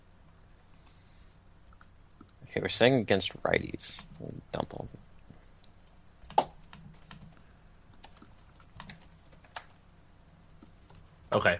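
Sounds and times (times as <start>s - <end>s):
people typing on computer keyboards: 0.3s - 1.0s, 1.6s - 3.1s, 3.8s - 5.0s, 5.6s - 9.8s, 10.6s - 11.4s
speech: 2.6s - 5.1s, 11.3s - 11.5s.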